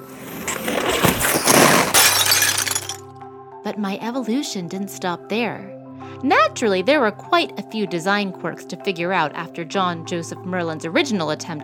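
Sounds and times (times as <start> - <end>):
large mirror shattering: 0.1 - 3.0
glass shards tinkling: 0.4 - 3.0
speech: 3.7 - 11.6.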